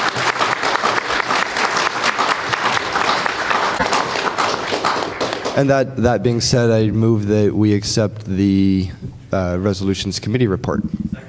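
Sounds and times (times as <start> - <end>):
audience applause from a room full of people at a meeting: 0.0 - 5.8
speech: 5.6 - 11.0.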